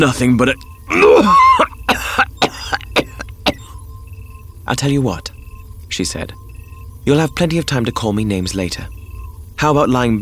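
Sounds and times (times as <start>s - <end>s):
speech: 0.0s - 1.8s, 4.7s - 5.4s, 6.0s - 6.4s, 7.0s - 9.0s, 9.6s - 10.2s
thick wet coughing: 0.9s - 3.7s.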